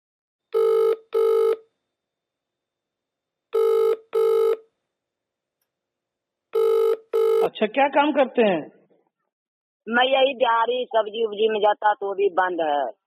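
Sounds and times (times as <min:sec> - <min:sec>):
telephone call ringing tone from India: 0:00.6 - 0:01.7, 0:03.6 - 0:04.7, 0:06.6 - 0:07.5
speech: 0:07.5 - 0:08.8, 0:09.8 - 0:13.0.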